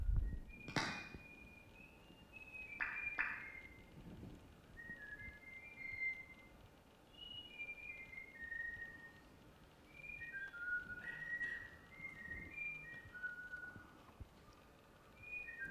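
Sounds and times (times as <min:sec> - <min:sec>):
soft background hiss: 0:00.0 - 0:15.7
captive Eurasian bullfinch whistling a flute-like tune: 0:00.1 - 0:04.0, 0:04.6 - 0:14.0, 0:15.0 - 0:15.7.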